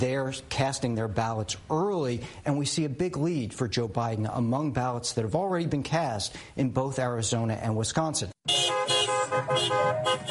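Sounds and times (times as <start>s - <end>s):
speech: 0.0s - 8.3s, 9.4s - 10.2s
several car horns honking: 8.4s - 10.2s.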